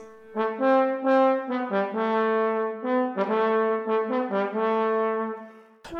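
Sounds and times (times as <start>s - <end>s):
trombone playing a smooth melodic line in an orchestral excerpt: 0.0s - 5.9s.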